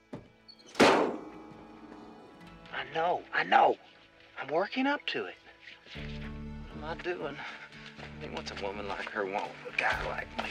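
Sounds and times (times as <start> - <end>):
truck bonnet slammed shut: 0.7 - 1.4
speech: 2.8 - 10.4.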